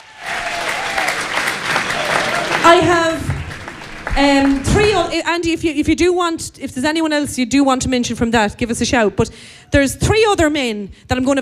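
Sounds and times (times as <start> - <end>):
audience applause for a guest at a live event: 0.0 - 5.2
speech: 2.7 - 3.2, 4.2 - 11.3.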